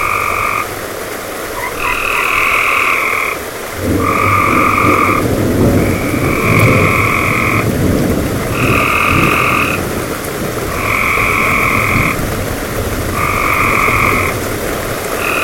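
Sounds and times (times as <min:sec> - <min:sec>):
frogs calling in a storm: 0:00.0 - 0:12.3, 0:13.1 - 0:15.4
storm: 0:03.7 - 0:15.4.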